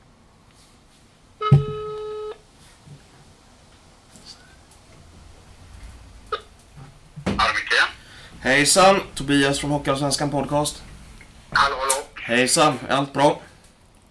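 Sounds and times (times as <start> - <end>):
telephone call ringing tone: 1.4 - 2.4
speech: 7.5 - 10.8, 12.3 - 13.5.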